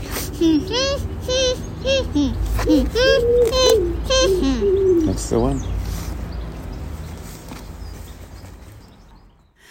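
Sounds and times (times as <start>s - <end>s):
person imitating a pigeon's cooing: 0.1s - 5.3s
speech: 0.4s - 5.7s.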